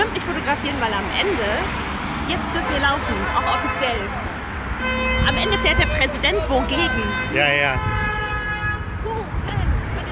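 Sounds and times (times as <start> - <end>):
busy city street traffic rumbling: 0.0 - 10.1
speech: 0.4 - 8.0
car horn honking: 2.4 - 9.0.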